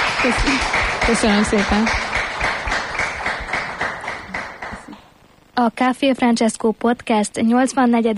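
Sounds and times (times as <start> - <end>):
audience applause: 0.0 - 5.1
speech: 0.2 - 2.1, 5.6 - 8.1.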